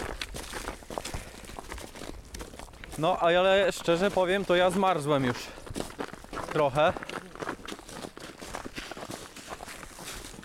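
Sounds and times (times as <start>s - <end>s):
footsteps walking outdoors at night in cold air: 0.0s - 10.4s
speech: 3.0s - 5.6s, 6.5s - 7.0s.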